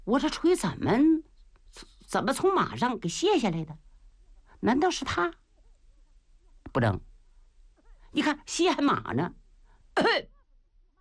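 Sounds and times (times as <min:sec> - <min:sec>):
speech: 0:00.1 - 0:03.8, 0:04.6 - 0:05.4, 0:06.7 - 0:07.1, 0:08.1 - 0:09.4, 0:10.0 - 0:10.3
performer imitating a character with a short throaty cough: 0:10.0 - 0:10.3.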